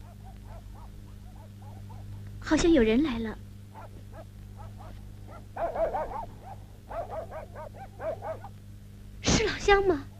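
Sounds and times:
dog barking: 0.0 - 2.2, 3.7 - 8.6
steady low hum: 0.0 - 10.1
speech: 2.5 - 3.5, 9.4 - 10.1.

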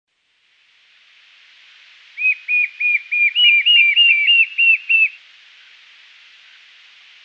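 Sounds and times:
white-shouldered fire-eye Pyriglena leucoptera whistled song: 2.2 - 5.2.

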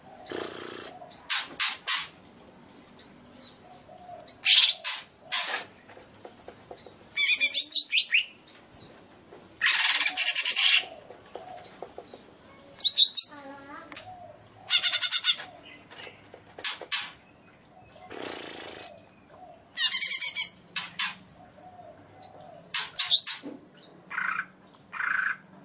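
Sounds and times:
leafbird rattling chatter and trills: 0.2 - 2.2, 4.5 - 13.9, 14.7 - 17.2, 18.0 - 19.0, 19.8 - 21.3, 22.7 - 23.5.

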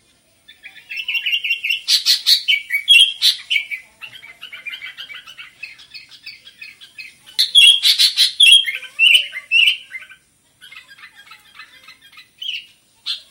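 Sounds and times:
sooty-headed bulbul singing: 0.5 - 10.2.

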